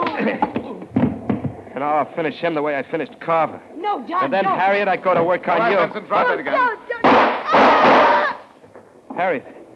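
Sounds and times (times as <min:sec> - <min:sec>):
speech: 0:00.2 - 0:00.6, 0:01.8 - 0:07.3, 0:09.2 - 0:09.6
gunshot from a gun fired during a struggle: 0:07.0 - 0:08.3.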